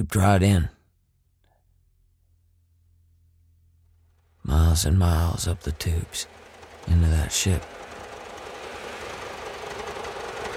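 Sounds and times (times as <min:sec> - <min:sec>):
speech: 0:00.0 - 0:00.8, 0:04.5 - 0:07.8
swarming insects buzzing drone: 0:04.0 - 0:10.5.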